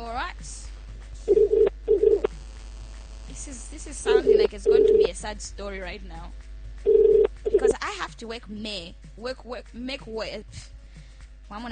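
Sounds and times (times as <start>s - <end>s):
telephone ringing on an outgoing call: 1.3s - 2.3s, 4.1s - 5.1s, 6.9s - 7.7s
speech: 4.6s - 6.5s, 7.9s - 10.8s, 11.5s - 11.6s.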